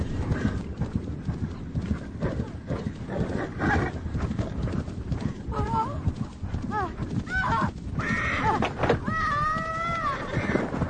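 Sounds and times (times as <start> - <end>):
horse galloping with a woman riding during a film stunt scene: 0.0 - 10.8
horse whinnying: 8.0 - 10.8.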